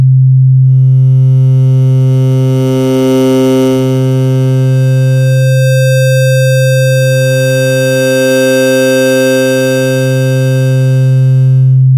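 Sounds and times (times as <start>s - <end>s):
synthesizer oscillator with custom waveforms: 0.2s - 11.9s.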